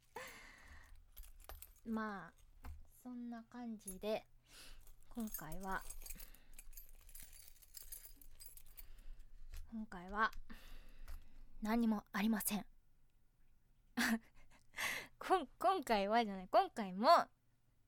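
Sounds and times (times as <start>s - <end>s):
keys jangling in a pocket: 0.0s - 2.9s, 3.8s - 9.9s
speech: 1.8s - 2.4s, 3.0s - 6.3s, 9.7s - 10.6s, 11.6s - 12.7s, 14.0s - 14.3s, 15.2s - 17.4s.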